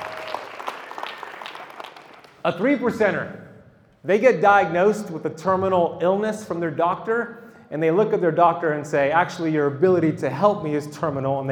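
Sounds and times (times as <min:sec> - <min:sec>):
audience applause: 0:00.0 - 0:02.4
speech: 0:02.4 - 0:03.4, 0:04.0 - 0:11.5.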